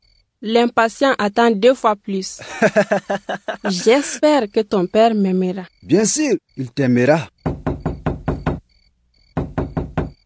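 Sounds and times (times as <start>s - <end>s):
speech: 0.4s - 7.7s
laughter: 2.4s - 4.3s
firm knocking on a door: 7.4s - 8.6s, 9.3s - 10.2s.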